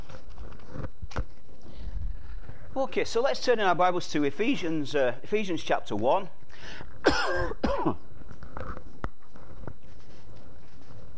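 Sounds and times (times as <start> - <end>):
speech: 2.8 - 8.0
person coughing: 7.0 - 8.0
soft throat clearing: 7.0 - 8.0.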